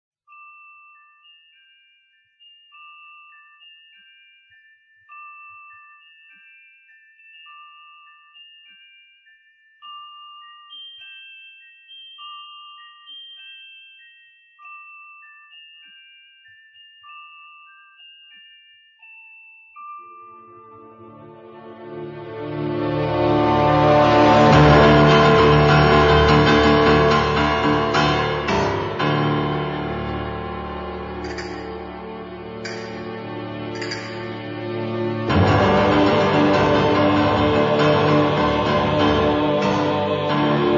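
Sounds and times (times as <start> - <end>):
music clock: 0.3 - 22.3, 23.1 - 40.7
carillon bells: 0.3 - 38.3.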